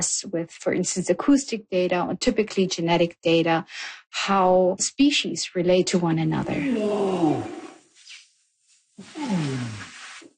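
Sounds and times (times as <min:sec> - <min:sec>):
speech: 0:00.4 - 0:07.6, 0:09.0 - 0:09.9
male orangutan long call: 0:06.6 - 0:07.8.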